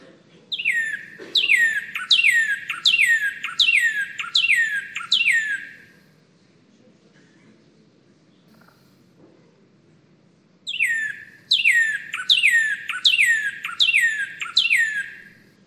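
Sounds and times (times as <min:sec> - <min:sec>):
northern cardinal singing repeated downslurred whistles: 0:00.5 - 0:05.9, 0:10.7 - 0:15.4.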